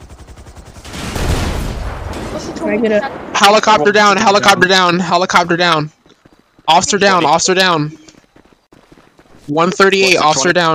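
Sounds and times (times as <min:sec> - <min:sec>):
gunfire volley in a police role-play video game: 0:00.8 - 0:04.5
speech: 0:02.6 - 0:06.0, 0:06.7 - 0:08.0, 0:09.5 - 0:10.7.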